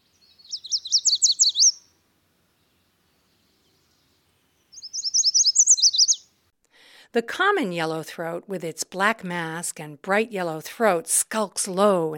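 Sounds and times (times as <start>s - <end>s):
yellow warbler singing: 0.0s - 2.0s, 2.6s - 6.4s
speech: 7.1s - 12.1s.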